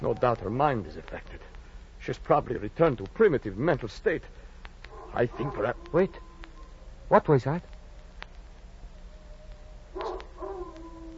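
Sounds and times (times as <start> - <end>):
speech: 0.0 - 1.4, 2.1 - 4.4, 5.1 - 6.2, 7.1 - 7.7
steady low hum: 0.0 - 11.1
dog howling behind a rock: 4.9 - 7.2, 9.1 - 11.1.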